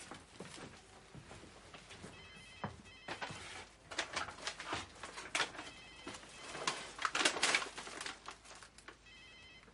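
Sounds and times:
telephone ringing unanswered in a home: 0:02.0 - 0:09.7.

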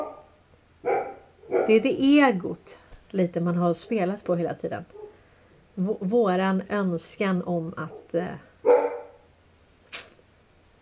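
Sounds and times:
dog barking: 0:00.0 - 0:01.8, 0:07.9 - 0:09.3
dog yipping: 0:00.0 - 0:01.8, 0:08.6 - 0:09.2
speech: 0:01.7 - 0:05.0, 0:05.8 - 0:08.8.

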